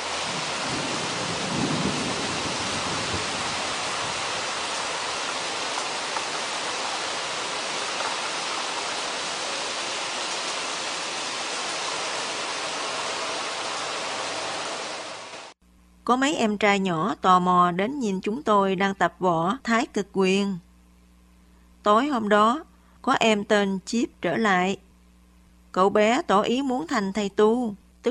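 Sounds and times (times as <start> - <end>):
heavy rain pouring down: 0.0 - 15.6
speech: 16.1 - 20.6, 21.8 - 24.8, 25.8 - 28.1.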